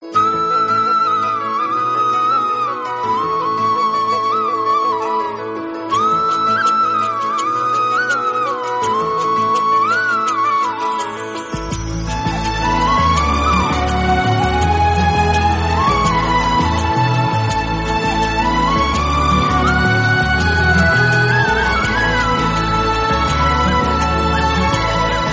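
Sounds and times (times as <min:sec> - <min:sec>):
flute ringtone: 0:00.0 - 0:25.3.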